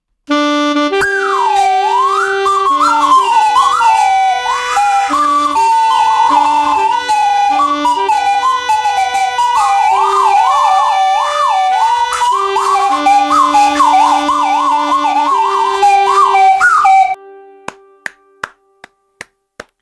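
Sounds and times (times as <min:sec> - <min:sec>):
group of slide whistles playing a slow melody: 0:00.3 - 0:17.2.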